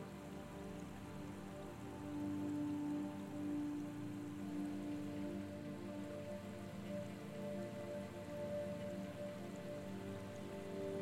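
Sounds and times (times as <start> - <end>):
steady rain pattering on a surface: 0.0 - 11.0.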